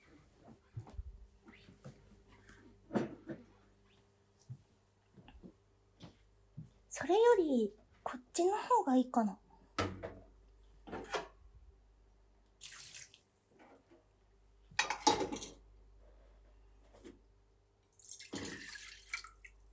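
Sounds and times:
speech: 7.0s - 7.8s, 8.4s - 9.4s
liquid splashing and dripping into a metal cooking pot: 12.6s - 13.4s, 17.9s - 19.7s
light clinks of kitchenware: 14.8s - 15.6s.

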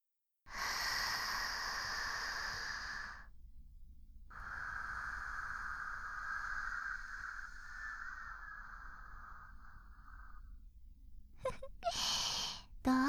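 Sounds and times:
slow deep breathing: 0.5s - 3.3s, 4.3s - 10.7s, 11.8s - 12.7s.

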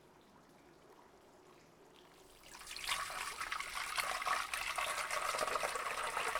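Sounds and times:
hot spring water poured over a person's back: 2.0s - 6.3s.

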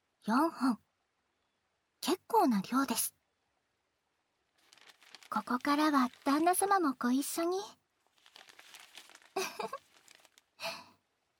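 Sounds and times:
speech: 0.2s - 0.8s, 2.0s - 3.2s, 5.3s - 7.8s
newspaper crinkling and crumpling while wrapping sweet potatoes: 4.6s - 7.3s, 8.0s - 10.8s.

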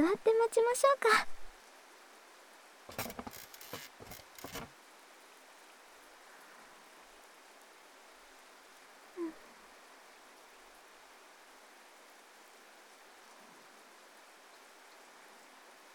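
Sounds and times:
steady rain falling: 0.0s - 15.9s
speech: 0.1s - 1.4s.

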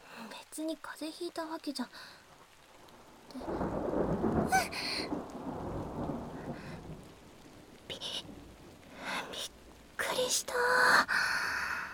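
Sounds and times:
steady rain hissing: 0.0s - 11.9s
speech: 0.6s - 2.2s, 3.3s - 3.8s
deep rumble of thunder: 2.8s - 10.5s.

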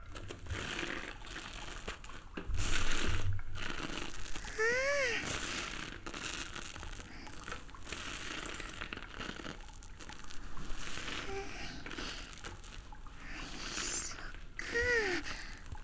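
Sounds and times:
soap lathered on a sponge for washing someone's back: 0.0s - 15.8s
brief high-pitched squeaks: 4.5s - 5.4s.

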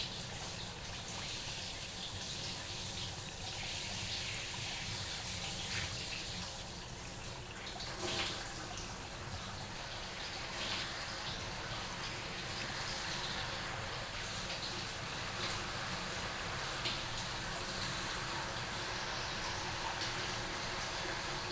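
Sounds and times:
hot water running from a shower during hair and back washing: 0.0s - 21.5s.

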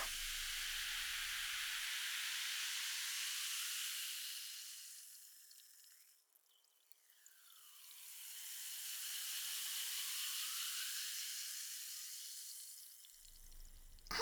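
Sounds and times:
carbonated drink fizzing for a toast: 0.0s - 14.1s.

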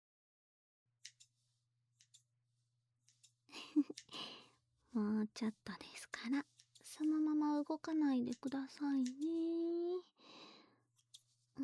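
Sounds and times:
scissors cutting frizzy hair near the bangs: 1.0s - 2.3s, 3.0s - 4.4s, 5.2s - 10.0s
speech: 5.0s - 10.5s.

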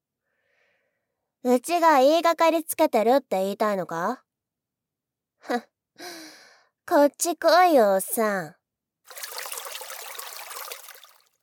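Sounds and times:
speech: 1.4s - 4.2s, 5.4s - 6.2s, 6.9s - 9.3s
river water flowing at a riverbank: 9.1s - 11.2s.

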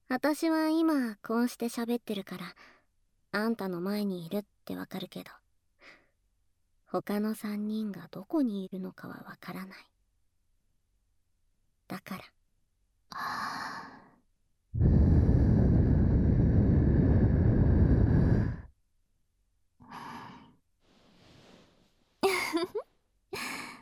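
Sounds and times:
speech: 0.1s - 5.4s, 6.9s - 9.9s, 11.9s - 12.4s, 13.1s - 13.8s
person blowing a puff of breath: 14.8s - 18.7s.

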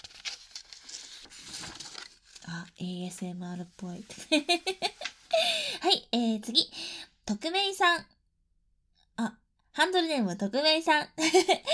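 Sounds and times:
paper page being turned: 0.0s - 2.6s, 4.0s - 5.3s
speech: 2.5s - 4.9s, 5.8s - 8.1s, 9.8s - 11.7s.

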